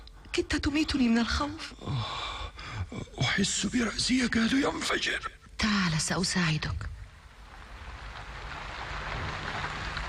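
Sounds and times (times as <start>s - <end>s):
speech: 0.4s - 2.3s, 2.9s - 6.9s
rain falling: 7.0s - 10.0s.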